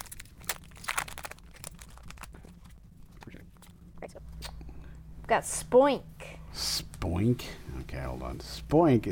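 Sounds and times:
card pack foil wrapper crinkling while torn open and handled: 0.0 - 3.7
speech: 5.3 - 9.1.

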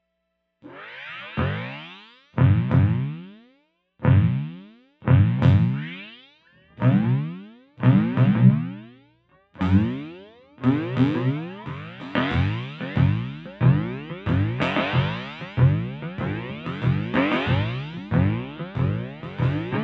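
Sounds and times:
drums: 2.4 - 3.1, 4.0 - 5.8, 9.6 - 19.8
electric bass: 2.4 - 3.1, 4.0 - 5.8, 6.7 - 8.8, 9.6 - 19.8.

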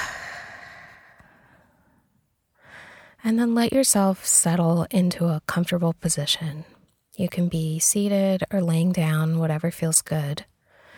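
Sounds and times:
deep breath let out slowly during a relaxation exercise: 0.0 - 1.7
speech: 3.2 - 10.5.

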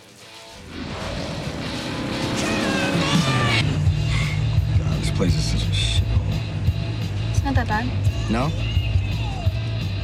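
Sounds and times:
car engine humming as the vehicle drives along the road: 0.4 - 10.0
speech: 5.2 - 5.7, 7.6 - 8.7.

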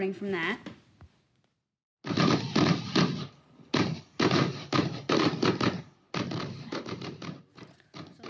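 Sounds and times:
speech: 0.0 - 0.7
fireworks show booming and crackling: 2.1 - 8.2.

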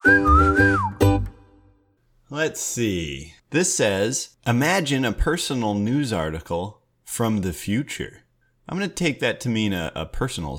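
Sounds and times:
person whistling a melody: 0.0 - 1.6
speech: 2.3 - 10.5.

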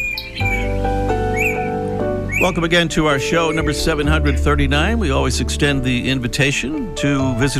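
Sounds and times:
fork-tailed flycatcher Tyrannus savana twittering chips: 0.0 - 2.7
speech: 2.4 - 7.5.

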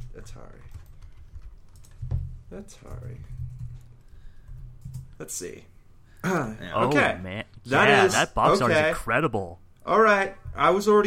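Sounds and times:
typing a search on a computer keyboard: 0.0 - 5.2
speech: 0.3 - 0.8, 2.5 - 3.4, 5.2 - 11.0.

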